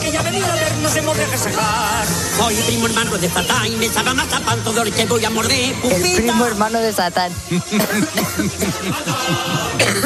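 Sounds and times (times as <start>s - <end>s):
speech: 0.2s - 10.0s
laughter: 7.5s - 10.0s
person coughing: 7.8s - 9.0s, 9.7s - 10.0s.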